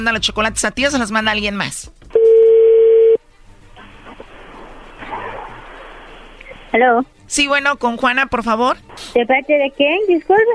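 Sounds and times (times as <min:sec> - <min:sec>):
speech: 0:00.0 - 0:02.0, 0:06.7 - 0:10.5
telephone tone as a number is dialed: 0:02.1 - 0:03.2.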